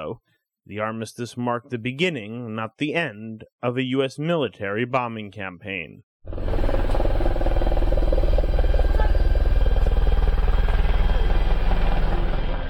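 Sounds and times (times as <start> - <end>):
speech: 0.0 - 6.6
U.S. Air Force Apache military helicopter flying along a fishing village boardwalk: 6.3 - 12.6.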